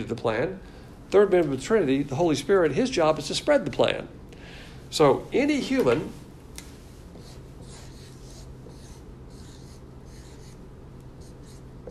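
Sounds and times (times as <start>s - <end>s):
speech: 0.0s - 4.2s, 4.9s - 6.2s
steady low noise: 0.0s - 11.8s
marker drawing a car battery on a board: 7.1s - 10.6s, 11.2s - 11.8s.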